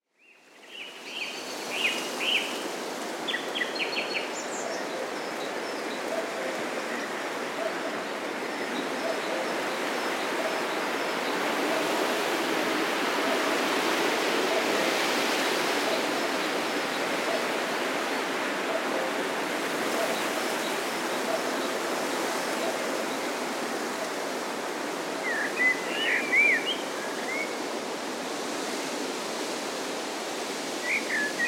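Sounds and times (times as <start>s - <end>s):
wind in trees: 0.0s - 31.4s.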